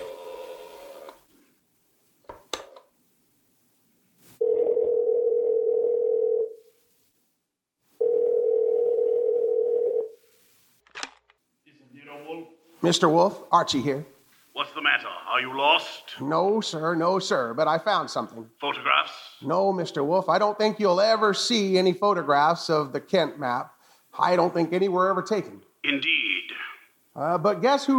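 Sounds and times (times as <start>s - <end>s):
long steady telephone ringing tones on the line: 4.4s - 6.5s, 8.0s - 10.1s
speech: 12.9s - 26.1s, 27.2s - 27.9s.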